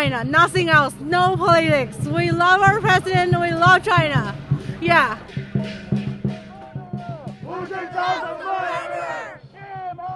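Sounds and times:
speech: 0.0s - 5.8s, 7.6s - 9.2s
protest crowd shouting with many overlapping voices: 6.5s - 10.1s.

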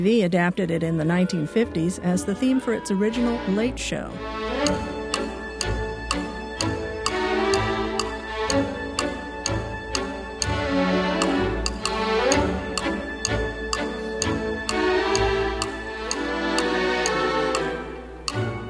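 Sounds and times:
speech: 0.0s - 4.9s
orchestral piece with strings and winds: 0.0s - 18.6s
bright woodblock-style ticks like a clock: 4.5s - 18.6s.

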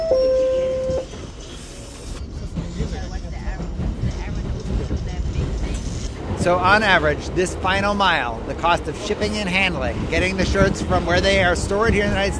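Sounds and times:
subway express train rolling with low rumble and clatter: 0.0s - 12.3s
speech: 6.4s - 12.3s.

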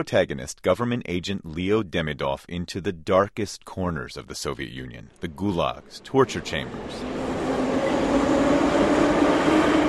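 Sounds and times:
speech: 0.0s - 9.8s
faint rail noise: 5.8s - 9.8s
subway train rumbling through an underground subway station in Moscow: 5.8s - 9.8s.

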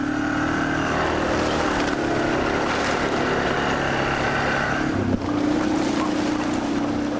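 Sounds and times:
ATV engine droning while riding through a muddy half-frozen wilderness trail: 0.0s - 7.1s.

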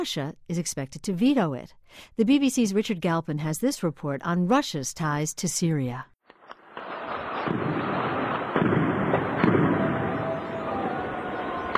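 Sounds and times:
speech: 0.0s - 6.1s
explosions: 6.4s - 11.7s
gunfire: 6.4s - 11.7s
faint distant shouting: 6.8s - 11.7s.

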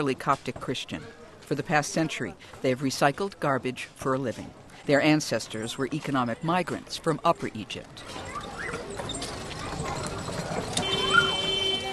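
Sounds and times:
speech: 0.0s - 9.2s
busy street noise in a garbage-recycling district in Cairo: 0.0s - 11.9s
donkey cart hooves clip-clopping through a narrow alley in Cairo, Egypt: 8.0s - 11.9s.

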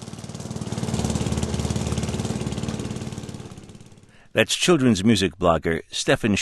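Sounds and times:
lawn mower engine running: 0.0s - 4.2s
speech: 4.4s - 6.4s.

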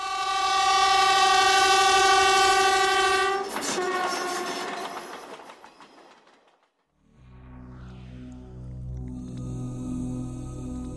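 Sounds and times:
train horn blaring: 0.0s - 5.0s
train rushing past on railway tracks: 0.0s - 8.7s.

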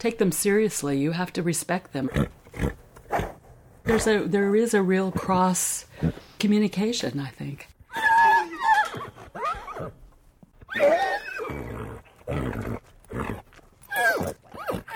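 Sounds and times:
speech: 0.0s - 2.8s, 3.9s - 7.7s
stallion snorting breaths: 2.0s - 4.2s, 10.9s - 14.9s
stallion whinnying and neighing: 7.9s - 10.0s, 10.6s - 14.9s.

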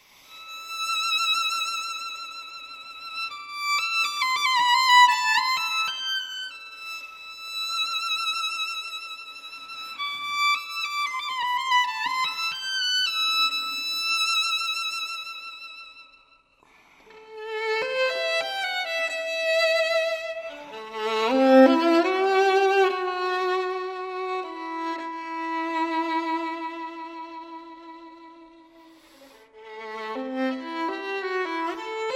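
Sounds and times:
solo violin playing a lyrical unaccompanied melody in a studio: 0.0s - 16.4s, 17.0s - 32.1s.

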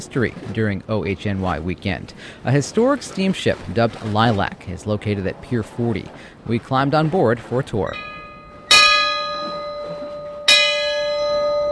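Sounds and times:
speech: 0.0s - 8.1s
ship's bell clanging: 7.0s - 11.7s.

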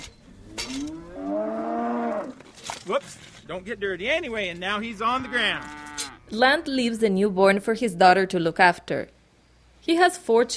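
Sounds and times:
cow lowing during calving on a farm: 0.5s - 2.4s, 4.7s - 6.7s
speech: 2.9s - 9.2s, 9.8s - 10.5s.

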